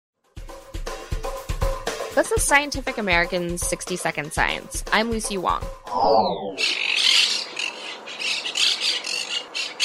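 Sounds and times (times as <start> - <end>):
speech: 2.2 - 6.9
monk parakeets squawking, nesting in Chicago: 6.2 - 9.8.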